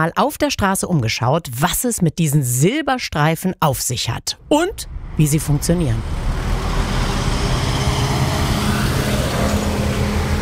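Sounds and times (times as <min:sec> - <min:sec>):
speech: 0:00.0 - 0:06.3
busy street traffic with cars, buses and trucks rumbling past: 0:04.6 - 0:10.4.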